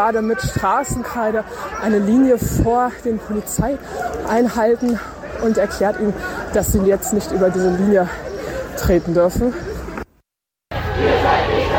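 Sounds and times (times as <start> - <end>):
speech: 0.0 - 9.7
protest crowd voices and shouts blocking a street: 0.0 - 10.0, 10.7 - 11.7.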